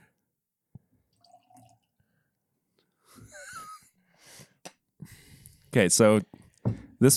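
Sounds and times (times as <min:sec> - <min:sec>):
non-alcoholic spirit pouring into a glass in a gurgling stream: 0:01.1 - 0:01.9
speech: 0:05.7 - 0:06.3, 0:07.0 - 0:07.1.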